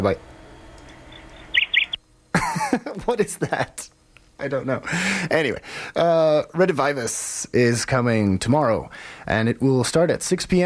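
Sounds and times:
speech: 0.0s - 0.3s, 2.6s - 10.6s
bird chirping over a crossed phone line: 1.0s - 2.0s.

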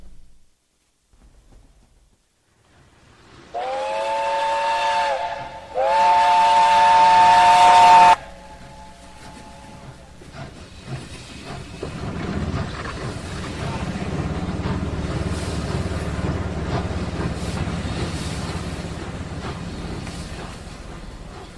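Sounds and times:
low quiet railway station rumble: 0.0s - 21.5s
steam whistle blasts at a railway station in Brighton England in 1962: 3.5s - 9.9s.

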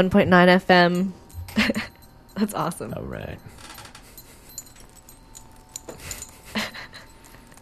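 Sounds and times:
speech: 0.0s - 3.6s
metal zippers on a sweater jingling as it is shaken by hand: 0.8s - 7.5s.

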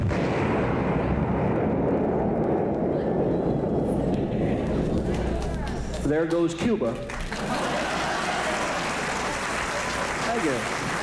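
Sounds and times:
barrage of explosion sound effects: 0.0s - 6.0s
speech: 6.1s - 7.2s
laughter: 7.3s - 11.0s.

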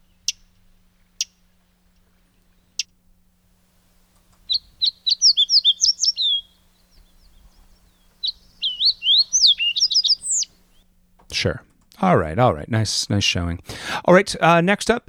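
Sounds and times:
sharp isolated fox sparrow ticks: 0.0s - 3.0s, 4.0s - 12.0s
fox sparrow singing bright rich whistled phrases: 4.5s - 10.8s
speech: 11.4s - 15.0s.

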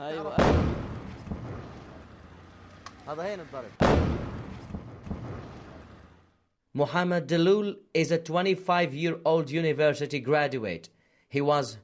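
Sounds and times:
speech: 0.0s - 0.9s, 3.1s - 4.2s, 6.8s - 11.8s
heavy airstrike explosions on a Gaza city: 0.4s - 2.5s, 3.8s - 6.2s.

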